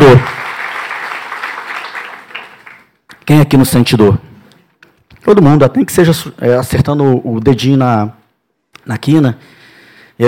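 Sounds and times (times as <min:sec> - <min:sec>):
audience applauding during a sermon: 0:00.0 - 0:03.0
speech: 0:03.3 - 0:04.3, 0:05.3 - 0:08.2, 0:08.8 - 0:09.6.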